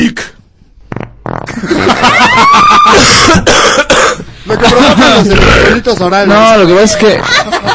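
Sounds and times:
farting: 0:00.8 - 0:01.9, 0:04.5 - 0:06.0
belching: 0:00.9 - 0:02.0, 0:02.9 - 0:06.1
laughter: 0:01.5 - 0:03.5, 0:04.4 - 0:07.7
speech: 0:04.6 - 0:07.6.

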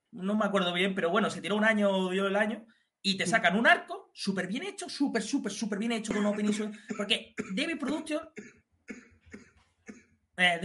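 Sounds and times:
speech: 0:00.2 - 0:09.0, 0:10.4 - 0:10.6
harsh forceful coughs: 0:06.1 - 0:10.2.

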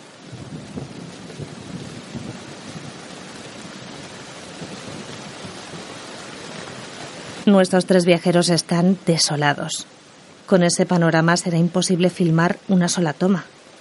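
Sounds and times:
heavy rain downpour: 0:00.0 - 0:13.7
speech: 0:07.5 - 0:13.6.

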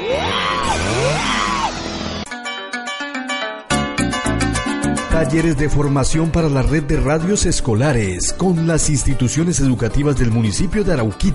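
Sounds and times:
people screaming and yelling in terror: 0:00.0 - 0:02.2
rhythmic burst of music: 0:00.8 - 0:11.3
speech: 0:05.2 - 0:11.3.

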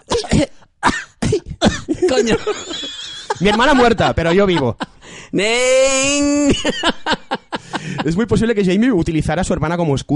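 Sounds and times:
person imitating a rough hacking cough: 0:00.0 - 0:02.5
speech: 0:00.4 - 0:01.0, 0:02.2 - 0:10.1
laughter: 0:01.8 - 0:05.0, 0:06.3 - 0:08.5.

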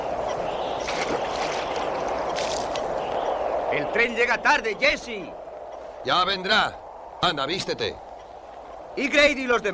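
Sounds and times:
water splashing as a young man bathes inside a railway water tank: 0:00.2 - 0:03.3
speech: 0:03.8 - 0:05.4, 0:06.0 - 0:08.0, 0:09.0 - 0:09.7.

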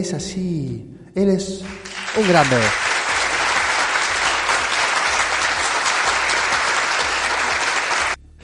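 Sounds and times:
speech: 0:00.0 - 0:02.9
canned applause, dense clapping from a crowd: 0:01.6 - 0:08.2.

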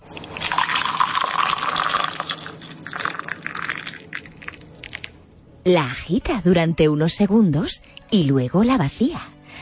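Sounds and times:
hot water poured into a teapot: 0:00.0 - 0:04.8
speech: 0:05.7 - 0:09.3.

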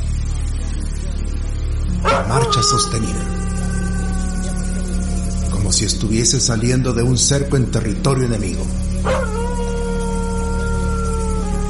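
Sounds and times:
constant low hum: 0:00.0 - 0:11.6
dog barking and howling: 0:02.0 - 0:05.6, 0:09.0 - 0:11.6
speech: 0:02.1 - 0:03.5, 0:05.7 - 0:09.4.

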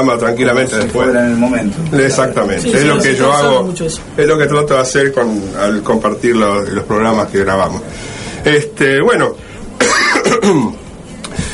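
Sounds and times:
speech: 0:00.0 - 0:09.4, 0:10.4 - 0:10.8
person coughing: 0:09.8 - 0:10.8
quiet huff of breath: 0:11.3 - 0:11.5.

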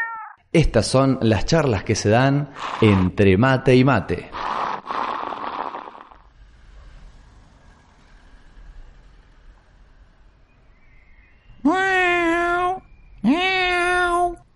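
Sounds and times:
cat meowing with loud drawn-out cries: 0:00.0 - 0:00.4, 0:11.6 - 0:14.4
speech: 0:00.5 - 0:04.6
rushing noise: 0:04.3 - 0:11.1.

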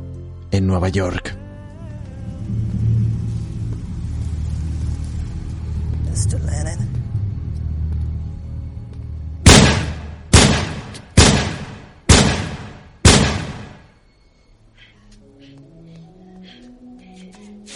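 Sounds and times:
low rumbling background: 0:00.0 - 0:14.0
speech: 0:00.5 - 0:01.4, 0:06.2 - 0:06.9
gunshots fired at a man at the door of his home in New York: 0:09.5 - 0:13.9.

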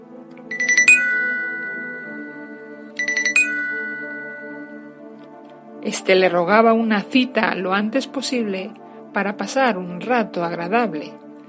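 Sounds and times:
telephone ringing with electronic chimes: 0:00.5 - 0:05.0
speech: 0:05.9 - 0:11.4.

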